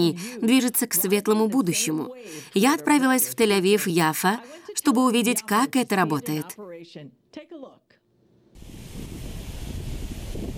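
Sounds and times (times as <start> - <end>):
speech: 0.0 - 7.8
person's voice: 0.0 - 7.9
wind: 8.6 - 10.5.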